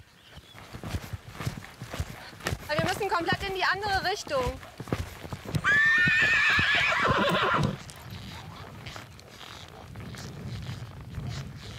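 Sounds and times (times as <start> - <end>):
horse hooves clopping: 0.0 - 11.7
speech: 2.7 - 4.8
horse whinnying: 5.5 - 9.8.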